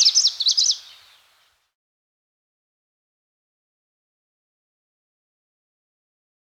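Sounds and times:
greenish warbler song fragment: 0:00.0 - 0:01.7.

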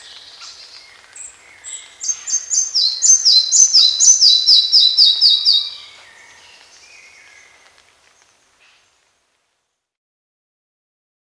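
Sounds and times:
red-breasted flycatcher song: 0:00.0 - 0:08.8.

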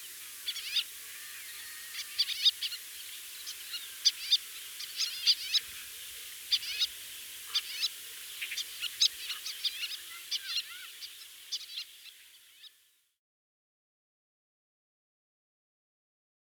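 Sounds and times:
white-tailed lapwing flight calls: 0:00.0 - 0:12.8
faint steady background hiss: 0:00.0 - 0:13.2.

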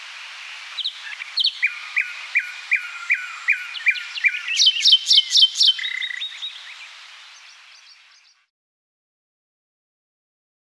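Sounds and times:
eastern form common nightingale singing: 0:00.0 - 0:08.4.

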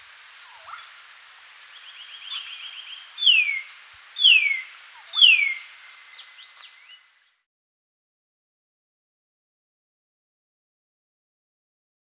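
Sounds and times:
faint chirps: 0:00.0 - 0:07.5
white-naped monarch calls: 0:01.8 - 0:07.0.

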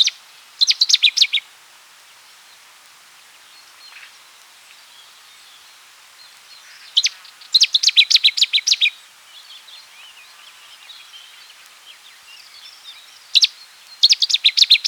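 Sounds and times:
Cetti's warbler song bursts: 0:06.6 - 0:14.8.

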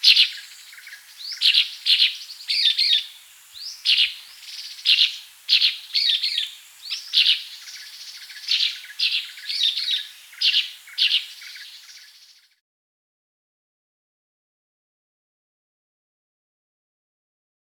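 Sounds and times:
sultan tit giving high chirping and buzzy rasping calls: 0:00.0 - 0:12.5.

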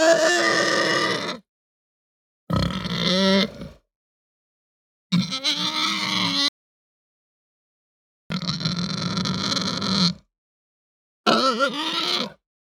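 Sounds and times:
Hampshire breed pig squealing and grunting: 0:00.0 - 0:01.5, 0:02.5 - 0:03.8, 0:05.2 - 0:06.5, 0:08.3 - 0:10.2, 0:11.3 - 0:12.4.

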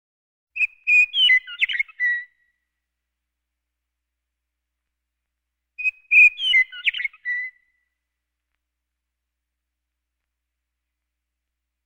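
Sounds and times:
Western meadowlark song: 0:00.6 - 0:03.0, 0:05.6 - 0:10.0.

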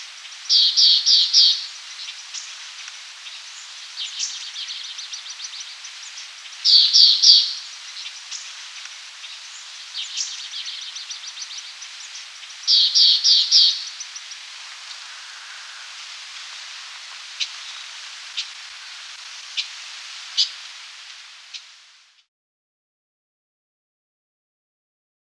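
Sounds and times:
background hiss: 0:00.0 - 0:22.3
Nepal fulvetta chattering calls: 0:00.1 - 0:21.8.

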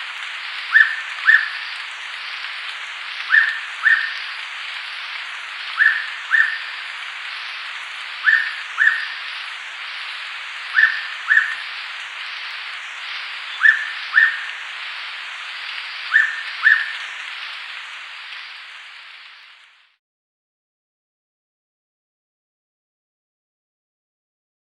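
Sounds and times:
continuous hissing background: 0:00.0 - 0:20.0
hooded pitta whistling two-note song: 0:00.7 - 0:01.7, 0:03.3 - 0:04.3, 0:05.8 - 0:06.8, 0:08.2 - 0:09.4, 0:10.7 - 0:11.8, 0:12.9 - 0:14.6, 0:16.0 - 0:17.1.

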